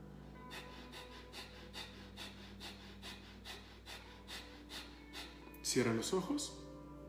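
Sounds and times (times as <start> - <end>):
quick rhythmic breaths forced in and out through the nose: 0.4 - 5.6
speech: 5.7 - 6.6.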